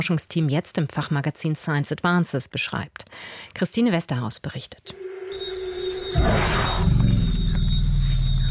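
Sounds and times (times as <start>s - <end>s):
speech: 0.0s - 7.1s
rhythmic chirping of insects or frogs: 5.0s - 8.5s
forest elephant rumble: 6.1s - 8.5s.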